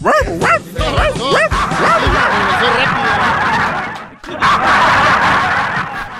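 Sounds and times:
man imitating a barking dog: 0:00.0 - 0:02.2
lively noisy commotion: 0:00.0 - 0:06.0
laughter: 0:00.8 - 0:06.1.

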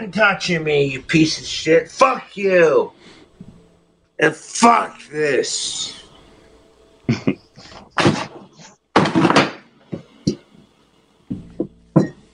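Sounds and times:
speech: 0:00.0 - 0:03.2, 0:04.2 - 0:06.0
table being kicked: 0:08.0 - 0:10.1.

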